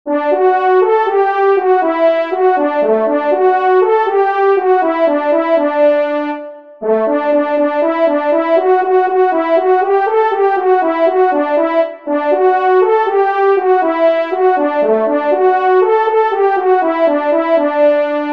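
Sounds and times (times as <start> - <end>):
solo hunting horns playing a launch call: 0.1 - 18.3.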